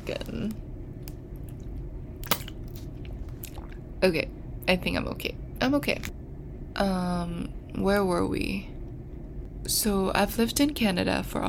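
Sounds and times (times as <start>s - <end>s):
speech: 0.1s - 0.7s, 4.0s - 6.2s, 6.8s - 8.7s, 9.6s - 11.4s
person drinking water with swallowing gulps: 3.0s - 3.9s.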